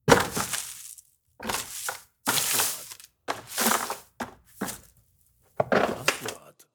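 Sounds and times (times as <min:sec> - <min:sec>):
rustling: 0:00.1 - 0:05.0.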